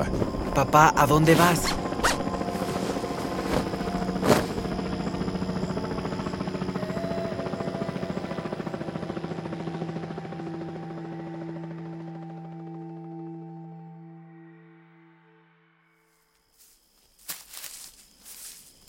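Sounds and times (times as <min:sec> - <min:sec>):
speech: 0:00.0 - 0:01.8
helicopter flying overhead: 0:00.0 - 0:14.2.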